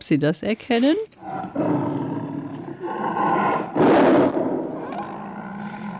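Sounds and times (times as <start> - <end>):
speech: 0.0 - 1.8
panther roaring: 1.2 - 5.9.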